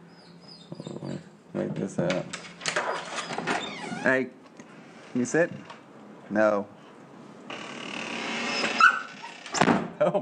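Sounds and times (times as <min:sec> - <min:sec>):
dog whining in a crate: 0:00.0 - 0:01.2, 0:02.8 - 0:04.0, 0:08.5 - 0:09.5
speech: 0:01.6 - 0:02.6, 0:04.0 - 0:04.4, 0:05.2 - 0:05.7, 0:06.3 - 0:06.8, 0:10.0 - 0:10.2
dog barking and yipping in a crate: 0:08.6 - 0:09.4.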